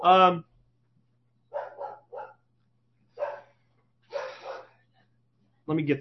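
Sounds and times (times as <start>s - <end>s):
speech: 0.0s - 0.5s, 5.7s - 5.9s
dogs barking: 1.5s - 2.5s, 3.1s - 4.8s.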